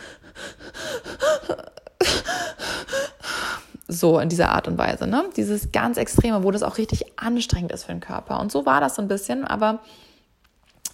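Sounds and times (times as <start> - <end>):
person imitating heavy sobbing with gasping breaths: 0.0 - 3.6
speech: 3.9 - 10.1.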